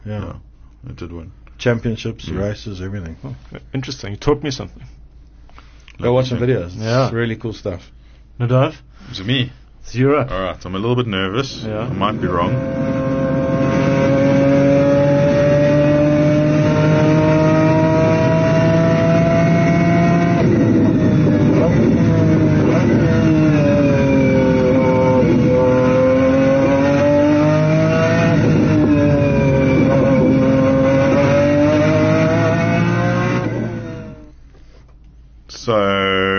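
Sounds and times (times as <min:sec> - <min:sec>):
speech: 0:00.0 - 0:05.0, 0:06.0 - 0:13.0
V12 engine of a race car screaming through high-pitched revs: 0:11.5 - 0:34.3.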